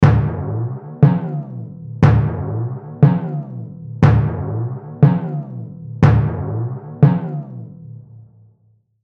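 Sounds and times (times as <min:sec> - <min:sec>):
rhythmic cartoon timpani pitch bends: 0:00.0 - 0:08.0.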